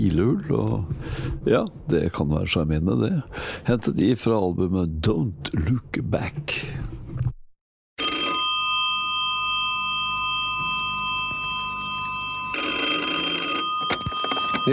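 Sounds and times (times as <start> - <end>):
speech: 0.0 - 7.0
telephone ringing with a metallic bell tone: 8.0 - 14.7.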